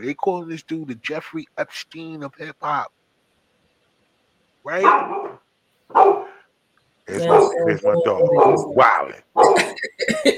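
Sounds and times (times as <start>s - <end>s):
speech: 0.0s - 3.0s, 4.6s - 5.2s, 7.1s - 10.3s
dog barking and whimpering: 4.8s - 6.4s, 7.2s - 8.8s, 9.4s - 9.8s.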